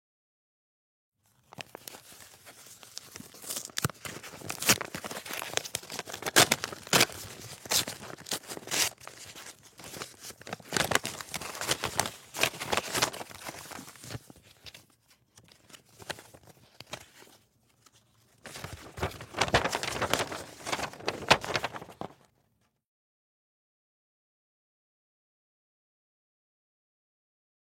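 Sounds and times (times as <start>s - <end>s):
letter being opened: 1.2s - 22.3s.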